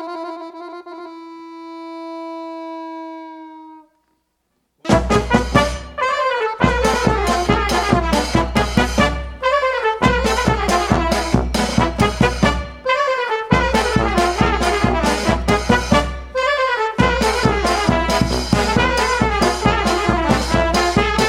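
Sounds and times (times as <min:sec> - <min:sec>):
brass band playing: 0:04.8 - 0:21.2.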